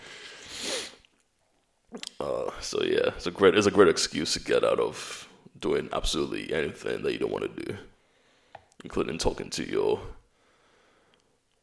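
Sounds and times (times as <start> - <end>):
person with a cold and flu sneezing: 0.5 - 1.0
speech: 1.9 - 7.9, 8.8 - 10.2.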